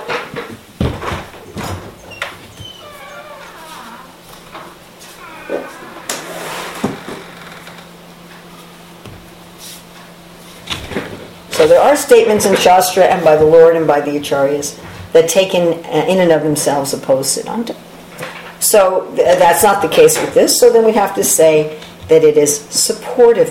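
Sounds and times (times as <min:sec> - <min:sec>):
door creaking: 0:00.8 - 0:08.2
speech: 0:11.6 - 0:17.9, 0:18.7 - 0:23.4.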